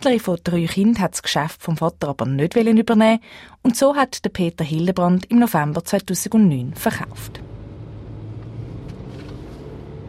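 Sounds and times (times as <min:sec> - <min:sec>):
speech: 0:00.0 - 0:07.5
company car engine rumble driving along a road: 0:06.7 - 0:10.0.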